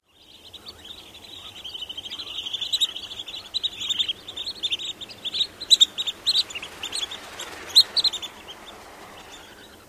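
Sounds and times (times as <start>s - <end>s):
small flock flying over: 0.2s - 9.8s.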